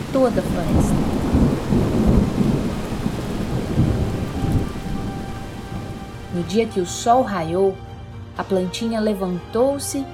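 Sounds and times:
heavy steady rain hissing in a thunderstorm: 0.0 - 7.0
deep thunder rumbling: 0.0 - 7.1
speech: 0.1 - 1.2, 6.4 - 10.1.

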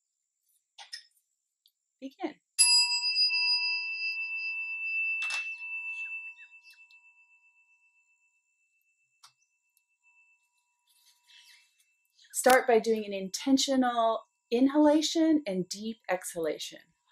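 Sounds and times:
speech: 2.0 - 2.5, 12.4 - 16.9
timer being switched on with a high bell-like tone: 2.6 - 9.2.

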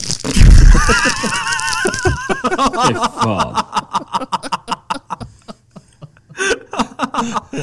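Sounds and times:
candy wrapper crinkling: 0.0 - 2.5
laughter: 0.7 - 7.6
speech: 0.9 - 1.6.

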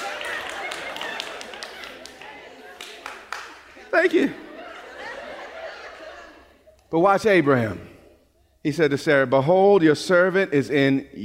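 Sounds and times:
room full of people applauding: 0.0 - 4.3
laughter: 0.0 - 7.8
speech: 3.9 - 4.4, 6.9 - 7.9, 8.6 - 11.2.

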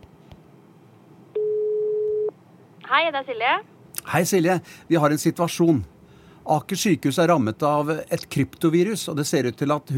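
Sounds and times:
telephone ringing tone while placing a call: 1.4 - 2.3
speech: 2.9 - 9.9.

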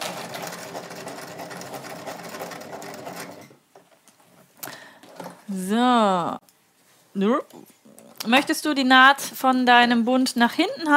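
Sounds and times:
sewing machine stitching a waistband onto trousers: 0.0 - 3.6
speech: 5.5 - 6.4, 7.2 - 10.9.

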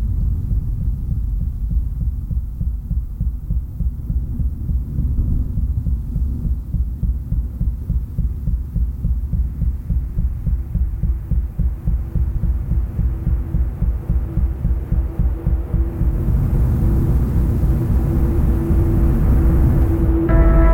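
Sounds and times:
deep accelerating heartbeats: 0.0 - 20.7
huge roaring turbine: 0.0 - 20.7
rising whining tone: 15.5 - 20.7.

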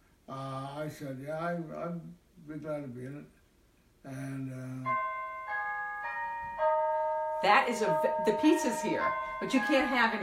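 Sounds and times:
speech: 0.4 - 3.4, 4.0 - 5.1, 7.4 - 10.2
house doorbell chime playing a holiday-style melody: 4.5 - 10.2.

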